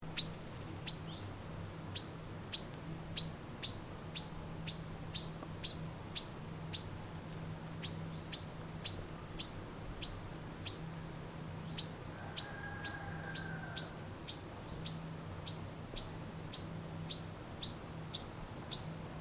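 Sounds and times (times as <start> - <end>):
papa-moscas-preto calling: 0.0 - 7.0, 7.8 - 10.9, 11.6 - 19.0.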